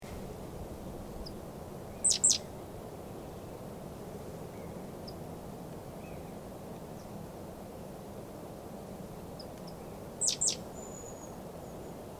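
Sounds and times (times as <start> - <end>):
steady low background noise: 0.0 - 12.1
Parus major great tit calls: 2.0 - 2.5, 9.4 - 11.9.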